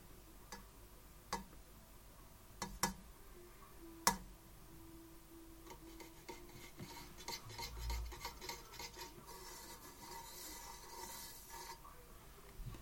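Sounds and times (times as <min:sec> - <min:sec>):
sharp metallic taps on a lamp: 0:01.3 - 0:01.6, 0:02.6 - 0:03.0, 0:04.1 - 0:04.3
quieter scraping and rubbing sounds: 0:05.7 - 0:11.9.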